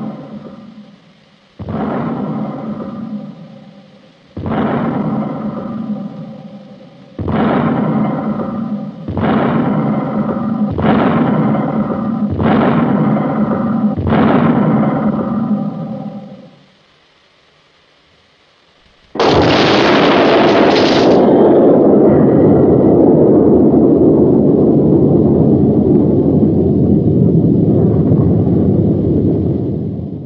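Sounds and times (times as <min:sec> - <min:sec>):
buzzing tonal drone with sharp pulses: 0:00.0 - 0:30.2
loud sudden explosion trailing into a rumbling roar: 0:01.6 - 0:03.4, 0:04.3 - 0:06.3, 0:07.1 - 0:15.8, 0:19.2 - 0:30.2.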